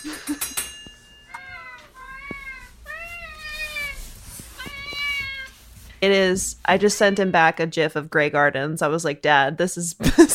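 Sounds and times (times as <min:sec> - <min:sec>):
household noise: 0:00.0 - 0:07.5
four cats meowing at feeding time in a house: 0:01.3 - 0:06.0, 0:06.6 - 0:07.5
speech: 0:06.0 - 0:10.3.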